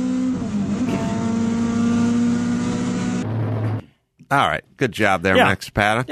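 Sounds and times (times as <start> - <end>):
race cars accelerating out of a corner: 0.0 - 3.8
speech: 4.3 - 6.1.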